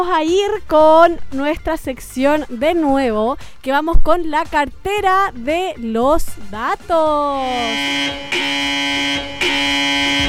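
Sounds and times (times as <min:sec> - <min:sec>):
speech: 0:00.0 - 0:10.2
electronic alarm buzzes: 0:07.4 - 0:10.2.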